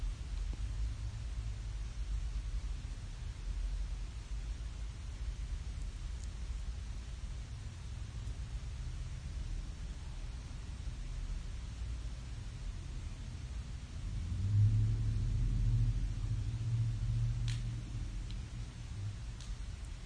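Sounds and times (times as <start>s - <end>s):
traffic of cars and motorcycles rumbling: 0.0s - 20.0s
vehicle passing by with a low engine drone: 14.0s - 19.1s
faint clicks: 19.3s - 20.0s.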